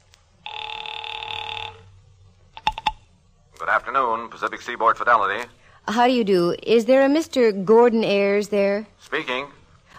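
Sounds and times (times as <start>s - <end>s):
telephone ringing with a buzzing tone: 0.4s - 2.0s
speech: 3.7s - 9.6s.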